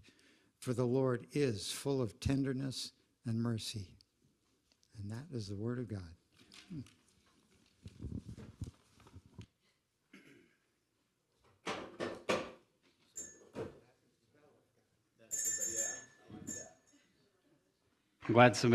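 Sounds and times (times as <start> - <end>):
speech: 0.6 - 4.0, 5.0 - 7.0, 18.3 - 18.7
bright bell ringing with a sustained metallic tone: 13.2 - 13.5, 15.3 - 16.9.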